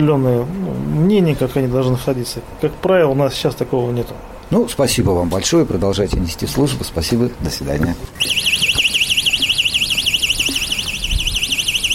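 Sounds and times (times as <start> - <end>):
speech: 0.0 - 8.6
gate opening electronic alarm buzzer warbling: 8.2 - 11.9.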